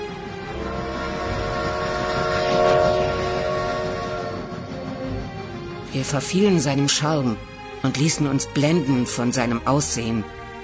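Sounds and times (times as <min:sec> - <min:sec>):
steam train rumbling past: 0:00.0 - 0:08.7
steam train whistling: 0:00.5 - 0:04.6
speech: 0:06.0 - 0:10.6.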